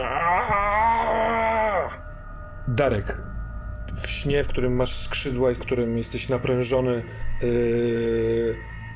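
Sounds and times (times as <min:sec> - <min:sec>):
person vocally imitating a smoke monster's creaky groan: 0:00.0 - 0:02.0
speech: 0:02.7 - 0:03.3, 0:03.9 - 0:08.7.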